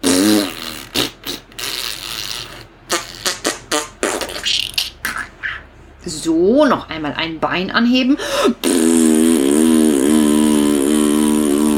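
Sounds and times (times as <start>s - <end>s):
squeaky and wet fart sounds: 0.0s - 4.9s, 8.6s - 11.7s
speech: 6.1s - 8.9s.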